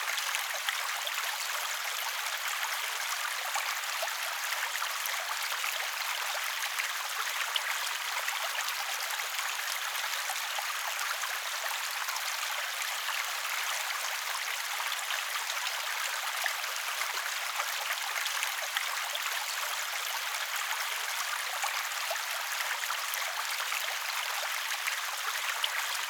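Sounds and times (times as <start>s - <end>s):
small stream flowing: 0.0s - 26.0s.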